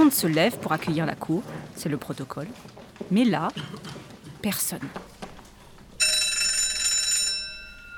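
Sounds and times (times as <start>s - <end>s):
speech: 0.0s - 5.1s
electric courtroom bell ringing: 6.0s - 7.9s.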